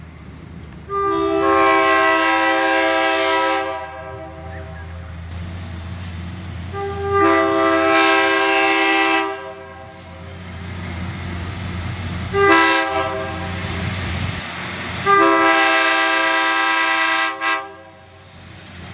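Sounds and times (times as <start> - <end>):
diesel train engine: 0.0 - 18.9
train horns: 0.9 - 5.5, 6.6 - 10.4, 12.2 - 14.0, 14.9 - 18.3.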